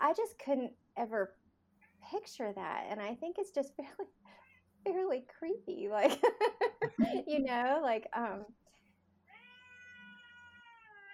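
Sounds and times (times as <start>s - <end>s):
low hum: 0.0s - 9.3s
speech: 0.1s - 1.4s, 2.0s - 8.7s
house cat meowing: 9.3s - 11.1s.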